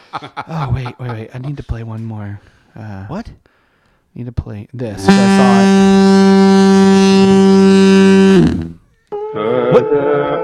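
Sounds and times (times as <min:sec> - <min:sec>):
laughter: 0:00.0 - 0:01.7, 0:09.4 - 0:10.4
speech: 0:00.1 - 0:03.6, 0:04.2 - 0:06.2, 0:07.2 - 0:07.5, 0:09.7 - 0:10.4
loud deep foghorn blast: 0:05.0 - 0:08.8
wavering horn tone: 0:05.0 - 0:10.4.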